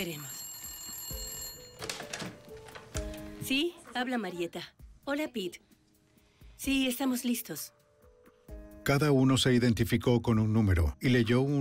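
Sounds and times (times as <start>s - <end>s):
speech: 0.0s - 0.3s, 3.5s - 5.7s, 6.6s - 7.8s, 8.8s - 11.5s
telephone ringing: 0.0s - 3.3s.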